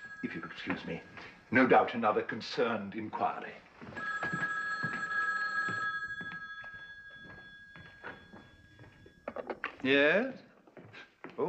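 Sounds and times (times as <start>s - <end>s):
old-fashioned telephone bell ringing in a metallic trill: 0.0s - 1.6s, 3.9s - 9.6s
speech: 0.2s - 4.0s, 9.8s - 10.5s.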